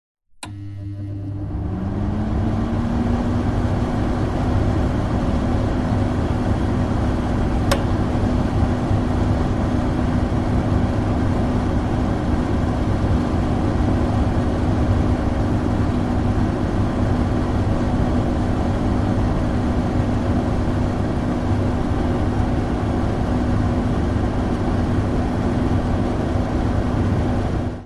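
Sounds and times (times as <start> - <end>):
household dehumidifier switch click: 0.4 - 0.7, 7.6 - 8.0
household dehumidifier running, recorded near inlet: 0.4 - 27.8.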